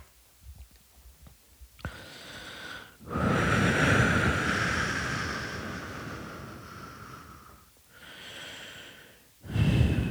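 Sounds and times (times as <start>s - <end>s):
heavy drawn-out breathwork breaths with forceful exhales: 2.0s - 10.0s.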